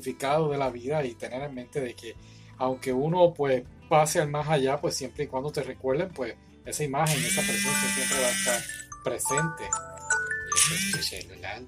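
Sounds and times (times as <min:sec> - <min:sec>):
speech: 0:00.0 - 0:09.9, 0:10.6 - 0:11.6
electronic alarm chime ringing: 0:07.1 - 0:11.2.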